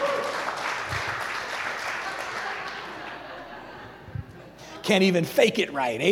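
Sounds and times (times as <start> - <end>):
weak scattered applause from a crowd: 0.0 - 3.4
laughter: 2.0 - 4.9
speech: 4.8 - 6.1.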